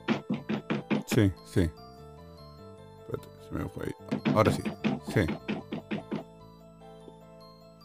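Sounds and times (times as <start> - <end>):
voice imitating rhythmic hammering-like knocking through a wall: 0.0 - 1.2, 4.1 - 6.3
speech: 1.2 - 1.8, 3.1 - 5.5.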